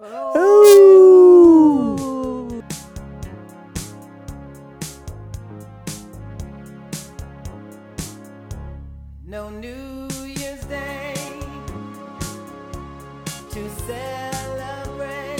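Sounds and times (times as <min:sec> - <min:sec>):
dog howling: 0:00.0 - 0:02.6.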